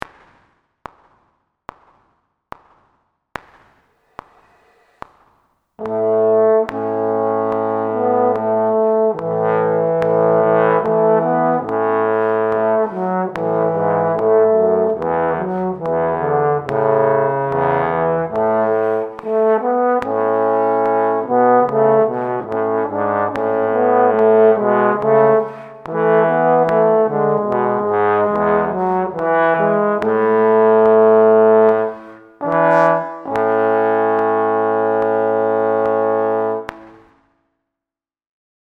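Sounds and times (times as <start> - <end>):
trombone playing in A major: 5.8 - 36.8.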